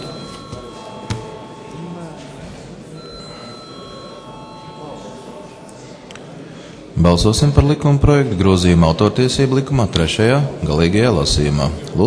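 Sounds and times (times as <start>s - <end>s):
electric bell ringing in a parliament chamber to call members to a vote: 0.0s - 2.2s, 2.9s - 5.9s
murmur of voices in a parliament chamber: 0.0s - 12.0s
speech: 7.0s - 12.0s.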